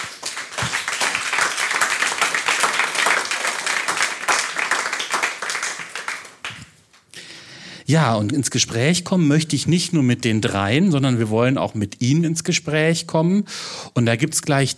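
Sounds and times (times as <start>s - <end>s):
audience applause welcoming panel guests: 0.0s - 6.8s
speech: 7.9s - 14.7s.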